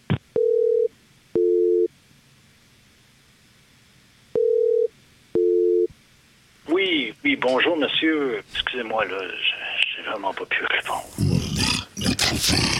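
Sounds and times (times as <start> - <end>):
telephone ringing tone during call transfer at the office of the Premier of Quebec: 0.4 - 1.9, 4.4 - 5.9
speech: 7.4 - 11.7, 12.3 - 12.7.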